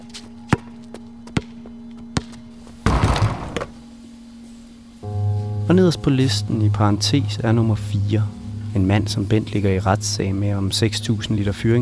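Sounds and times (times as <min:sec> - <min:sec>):
basketball bouncing on hard pavement: 0:00.5 - 0:00.7, 0:02.2 - 0:03.7
low steady hum: 0:03.7 - 0:11.8
speech: 0:05.7 - 0:11.8.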